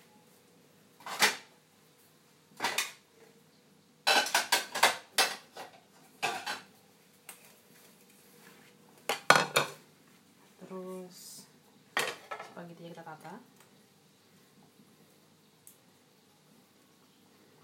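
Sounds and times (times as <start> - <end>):
plates and cutlery clattering on a hard counter: 1.0 - 1.5, 2.6 - 3.0, 4.0 - 6.7, 9.1 - 9.8, 12.0 - 12.6
speech: 12.8 - 13.6.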